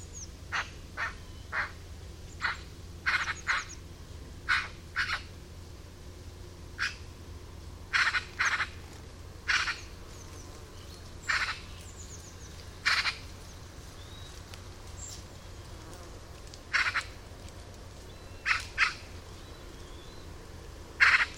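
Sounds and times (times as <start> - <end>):
Eurasian magpie uttering rough scratchy calls: 0.5 - 1.8, 2.4 - 3.8, 4.4 - 5.3, 6.8 - 7.1, 7.9 - 8.8, 9.4 - 10.0, 11.2 - 11.8, 12.8 - 13.3, 16.7 - 17.2, 18.4 - 19.1, 21.0 - 21.3.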